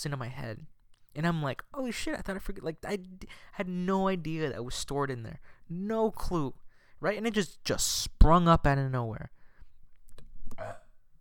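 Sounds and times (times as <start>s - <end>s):
speech: 0.0s - 9.4s
small mouth sounds: 10.1s - 11.0s
short quiet burp: 10.6s - 11.0s.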